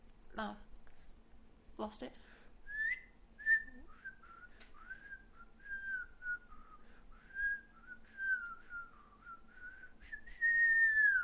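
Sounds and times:
speech: 0:00.4 - 0:00.7, 0:01.8 - 0:02.4
person whistling a slow wandering melody: 0:02.7 - 0:11.2.

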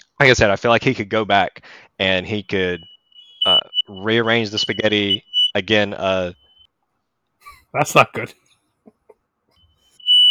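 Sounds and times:
speech: 0:00.2 - 0:06.4, 0:07.7 - 0:08.4
shrill piercing smoke alarm tone in a home: 0:02.3 - 0:06.7, 0:09.6 - 0:10.2.

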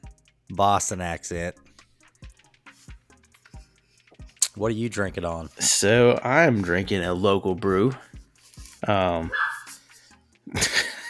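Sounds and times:
speech: 0:00.6 - 0:01.7, 0:04.6 - 0:08.1, 0:08.8 - 0:09.4
dog barking: 0:09.3 - 0:09.8
laughter: 0:10.5 - 0:11.0.

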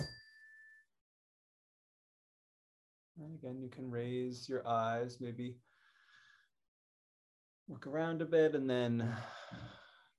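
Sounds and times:
bell struck: 0:00.0 - 0:00.8
speech: 0:03.2 - 0:05.7, 0:07.7 - 0:09.8.

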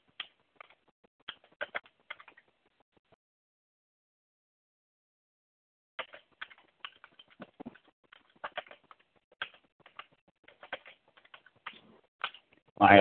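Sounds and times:
typing on a noisy desktop computer keyboard: 0:00.1 - 0:02.4, 0:06.0 - 0:12.5
speech: 0:12.8 - 0:13.0.

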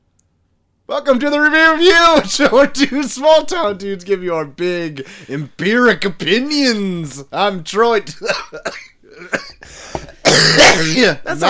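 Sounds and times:
speech: 0:00.9 - 0:11.4
person coughing: 0:08.2 - 0:11.1
person clearing their throat: 0:08.6 - 0:11.0.

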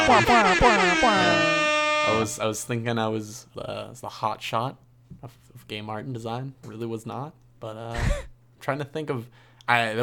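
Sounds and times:
loud brassy air horn blasts with wavering pitch: 0:00.0 - 0:02.7
speech: 0:00.1 - 0:10.0.

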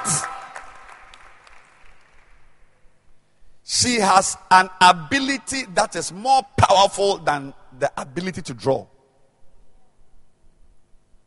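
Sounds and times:
audience applause greeting a rapper and keyboardist: 0:00.0 - 0:02.3
speech: 0:03.8 - 0:08.9.

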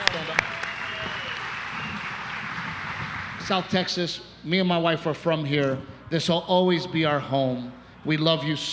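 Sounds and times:
audience applause: 0:00.0 - 0:03.5
speech: 0:03.5 - 0:08.7.

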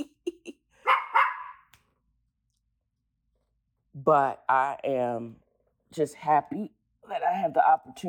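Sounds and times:
dog barking: 0:00.8 - 0:01.7
speech: 0:04.0 - 0:08.0.

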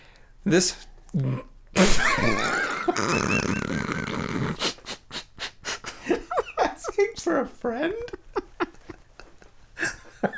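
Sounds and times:
speech: 0:00.4 - 0:04.0, 0:07.2 - 0:08.2
laughter: 0:02.0 - 0:04.2, 0:05.9 - 0:07.2, 0:07.9 - 0:10.3
loud gurgling burp into a microphone: 0:02.5 - 0:04.6
short rhythmic breathy bursts: 0:04.5 - 0:06.1.

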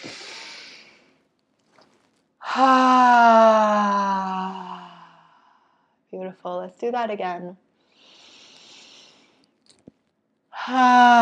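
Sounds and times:
speech: 0:02.6 - 0:03.4, 0:06.4 - 0:07.6, 0:10.7 - 0:11.2
deep breath in during a guided group breathing exercise: 0:04.4 - 0:06.0, 0:07.8 - 0:09.4.

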